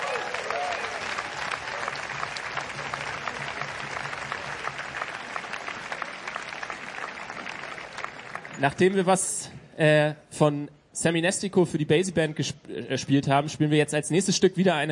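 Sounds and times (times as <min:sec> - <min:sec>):
audience applause for a musician: 0:00.0 - 0:08.8
speech: 0:08.6 - 0:14.8.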